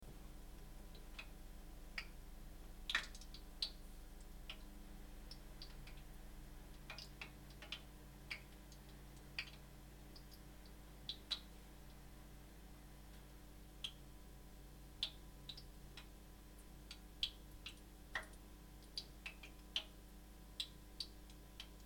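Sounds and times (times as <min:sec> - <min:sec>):
oil boiling: 0:00.2 - 0:21.8.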